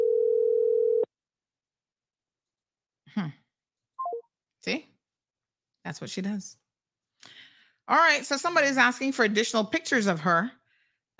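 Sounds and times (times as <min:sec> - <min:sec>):
telephone ringing tone of an unanswered call: 0:00.0 - 0:01.1
person sighing: 0:03.1 - 0:03.4
speech: 0:03.1 - 0:03.4, 0:04.6 - 0:04.9, 0:05.8 - 0:06.6, 0:07.2 - 0:10.6.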